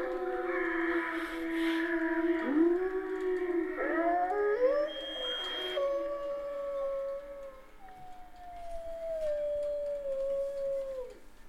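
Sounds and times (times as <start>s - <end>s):
wolf howling: 0.0s - 11.2s.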